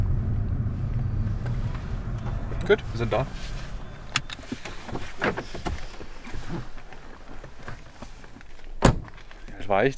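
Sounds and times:
faint rattles and bumps: 0.0 - 9.5
car driving along a rough dirt field path beside railway tracks: 0.0 - 9.6
speech: 2.7 - 3.6, 9.7 - 9.9.

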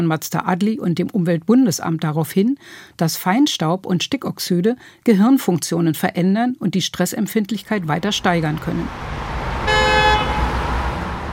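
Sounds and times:
speech: 0.0 - 9.3
street traffic rumble: 7.7 - 11.3
car horn honking: 7.8 - 11.3.

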